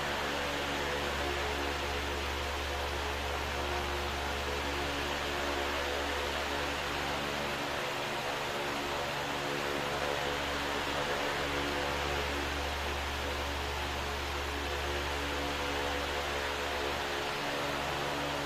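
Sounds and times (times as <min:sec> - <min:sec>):
oscillating fan whirring: 0:00.0 - 0:18.4.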